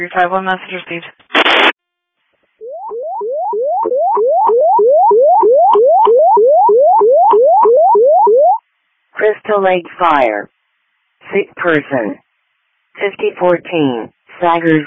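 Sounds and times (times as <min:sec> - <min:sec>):
speech: 0:00.0 - 0:01.2, 0:09.5 - 0:10.5, 0:11.3 - 0:12.2, 0:13.0 - 0:14.8
radio static burst: 0:01.2 - 0:01.8
fire dispatch paging tones of rapidly repeating rising electronic chirps over radio: 0:02.6 - 0:08.6.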